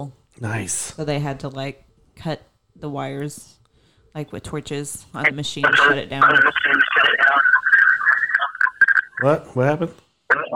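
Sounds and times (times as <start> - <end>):
speech: 0.0 - 7.4, 9.2 - 10.5
voices over a call line with loud echo: 0.4 - 10.5.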